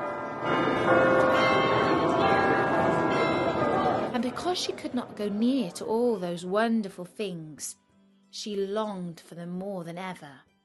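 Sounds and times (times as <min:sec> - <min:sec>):
church bells pealing: 0:00.0 - 0:04.8
speech: 0:04.4 - 0:10.5.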